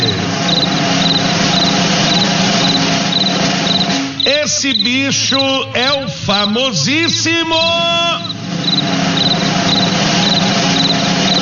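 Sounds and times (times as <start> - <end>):
constant hiss: 0.0 - 11.3
cricket on a farm chirping: 0.5 - 5.5, 8.2 - 11.3
speech: 4.6 - 9.5.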